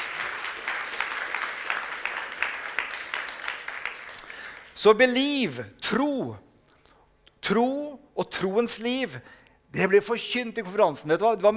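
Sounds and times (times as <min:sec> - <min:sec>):
audience applause at a church conference: 0:00.0 - 0:04.8
speech: 0:04.8 - 0:06.5, 0:07.5 - 0:11.5.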